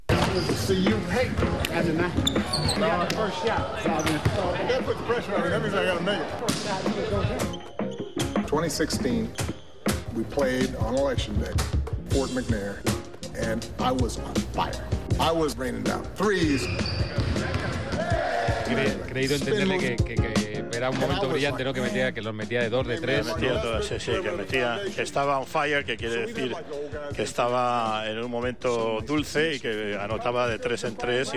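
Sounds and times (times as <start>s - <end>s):
people talking and calling out: 0.0s - 31.3s
sharp squeaks during a pickup basketball game: 0.1s - 1.2s, 2.1s - 3.2s, 7.2s - 10.0s, 16.4s - 17.5s
speech: 0.4s - 7.7s, 8.5s - 9.6s, 10.2s - 17.5s, 18.7s - 31.3s
basketball bouncing during a pickup game: 16.9s - 17.8s.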